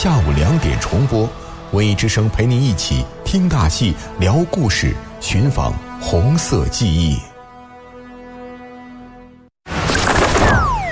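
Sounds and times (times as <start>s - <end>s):
speech: 0.0s - 7.3s
small bird crashing into window glass: 9.8s - 10.6s.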